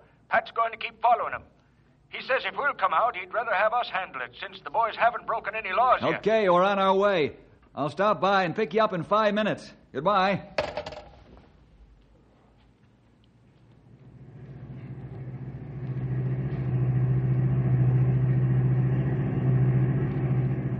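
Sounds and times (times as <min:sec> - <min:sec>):
speech: 0:00.3 - 0:10.6
car engine rumbling while driving along a road: 0:13.9 - 0:20.7
road noise: 0:14.1 - 0:20.7.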